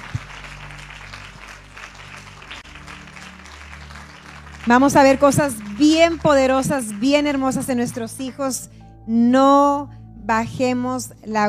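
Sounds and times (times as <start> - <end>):
low sustained organ-like hum: 0.0 - 7.0
crowd applauding after a prayer: 0.0 - 8.5
speech: 4.6 - 11.4.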